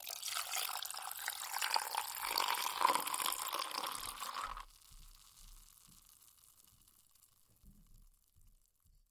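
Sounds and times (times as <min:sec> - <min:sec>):
juicer running: 0:00.2 - 0:04.6.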